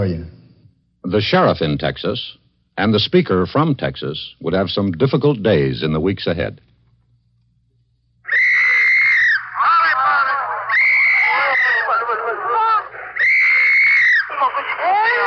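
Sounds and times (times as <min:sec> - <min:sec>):
speech: 0:00.0 - 0:00.3, 0:01.1 - 0:06.7
crowd of refugees wailing and screaming during the fall of Seoul: 0:08.3 - 0:12.0
infants crying among refugees during the fall of Seoul: 0:08.3 - 0:15.2.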